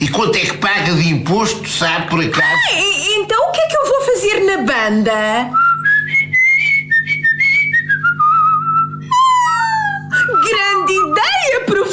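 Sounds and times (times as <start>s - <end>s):
speech: 0.1s - 5.7s
person whistling a simple stepwise tune: 5.6s - 11.3s.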